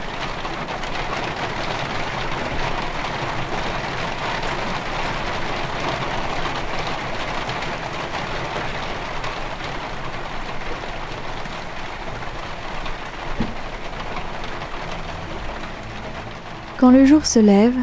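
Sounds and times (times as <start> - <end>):
heavy raindrops pelting a hard boat deck: 0.0 - 17.8
speech: 16.8 - 17.8.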